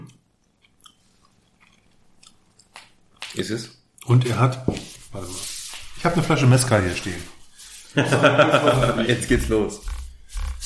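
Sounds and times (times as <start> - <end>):
person chewing young vegetables: 0.5 - 2.9
speech: 3.4 - 9.9
laughter: 7.9 - 9.6.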